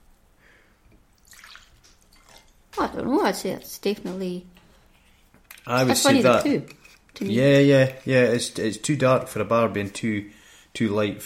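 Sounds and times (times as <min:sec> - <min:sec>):
soft drips of liquid: 0:00.9 - 0:02.9
liquid pouring: 0:01.2 - 0:02.8
speech: 0:02.9 - 0:04.6, 0:05.7 - 0:11.2.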